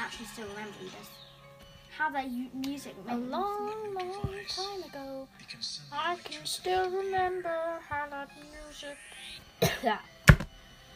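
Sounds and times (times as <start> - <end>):
speech: 0.2 - 1.3, 2.0 - 10.1
person coughing: 9.6 - 10.0.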